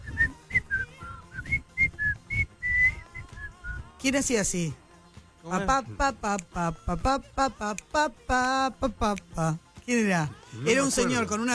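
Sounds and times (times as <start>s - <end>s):
person whistling an old TV advertisement jingle: 0.0s - 3.9s
speech: 4.0s - 4.8s, 5.4s - 11.5s.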